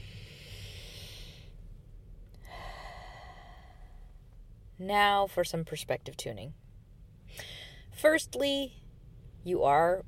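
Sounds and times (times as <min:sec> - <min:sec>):
slow deep even breath: 0:00.0 - 0:01.7, 0:02.4 - 0:04.4, 0:07.3 - 0:07.9
speech: 0:04.8 - 0:06.6, 0:07.3 - 0:08.8, 0:09.4 - 0:10.0.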